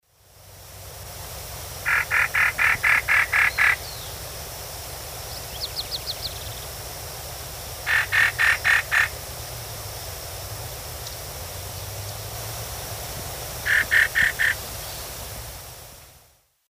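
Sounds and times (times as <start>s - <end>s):
Taraba major call: 1.9s - 4.1s, 7.9s - 9.1s, 13.7s - 14.6s.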